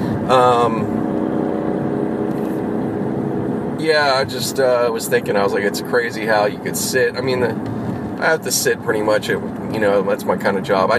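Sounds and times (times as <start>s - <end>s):
motorcycle engine rumbling: 0.0s - 8.6s
speech: 0.3s - 1.0s, 3.8s - 10.9s.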